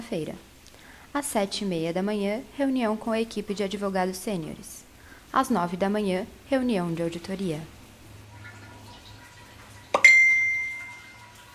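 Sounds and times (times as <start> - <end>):
speech: 0.1 - 0.5, 1.1 - 7.8
message notification chime: 10.0 - 11.2.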